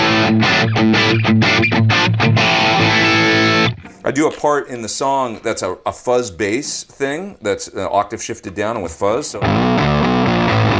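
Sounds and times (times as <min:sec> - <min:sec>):
dirty distorted electric guitar playing chugging rhythm chords: 0:00.0 - 0:04.0, 0:09.4 - 0:10.7
speech: 0:04.1 - 0:10.7.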